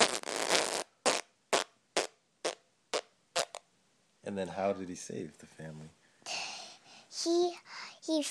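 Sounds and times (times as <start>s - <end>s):
child blowing a wet raspberry imitating a fart: 0.0s - 3.6s
speech: 4.3s - 6.0s, 7.2s - 8.2s.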